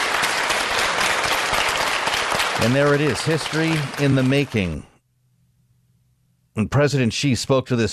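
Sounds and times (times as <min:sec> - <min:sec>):
large crowd applauding committee members: 0:00.0 - 0:04.8
speech: 0:02.6 - 0:04.9, 0:06.6 - 0:07.9.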